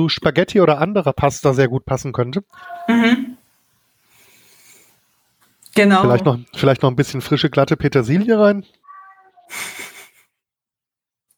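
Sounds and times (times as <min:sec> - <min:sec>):
speech: 0:00.0 - 0:03.4, 0:05.8 - 0:08.8, 0:09.5 - 0:09.9
cat meowing and complaining: 0:02.6 - 0:03.0, 0:08.8 - 0:09.7.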